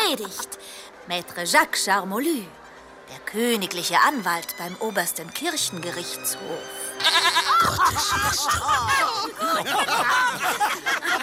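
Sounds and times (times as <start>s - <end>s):
speech: 0.1s - 11.2s
goat bleating in wavering cries: 7.0s - 7.9s
dense lively crowd laughing and calling out: 7.0s - 11.2s.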